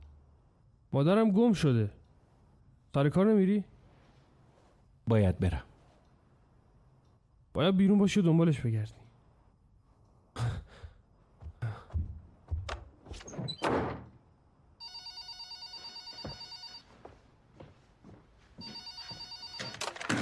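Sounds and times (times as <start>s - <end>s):
speech: 0.9s - 2.0s, 2.9s - 3.7s, 5.1s - 5.7s, 7.5s - 9.0s
telephone ringing in long electronic bursts: 14.8s - 16.9s, 18.6s - 20.1s.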